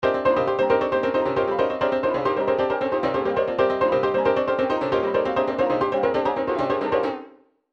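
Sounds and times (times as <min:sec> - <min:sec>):
trance MIDI loop riff: 0:00.0 - 0:07.1.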